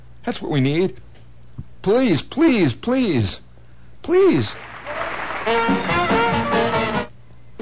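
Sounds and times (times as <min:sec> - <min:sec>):
speech: 0:00.3 - 0:01.1, 0:01.8 - 0:03.4, 0:04.0 - 0:04.7, 0:05.5 - 0:06.0
audience clapping: 0:04.4 - 0:07.1
audience cheering: 0:04.5 - 0:07.1.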